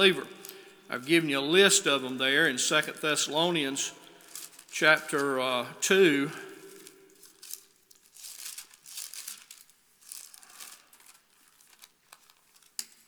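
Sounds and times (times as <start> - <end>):
speech: 0.0 - 4.0, 4.7 - 6.5
pages held with paper clips rustling and crinkling as they are flipped: 4.0 - 5.4, 6.5 - 13.0.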